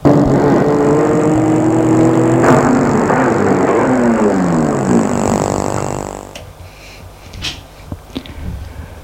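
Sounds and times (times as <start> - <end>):
car engine humming as the vehicle slows: 0.0 - 6.4.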